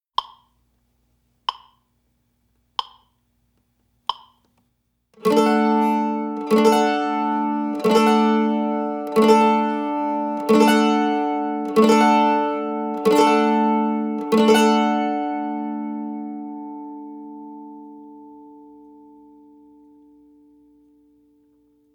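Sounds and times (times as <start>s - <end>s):
simple strumming: 5.2s - 21.9s.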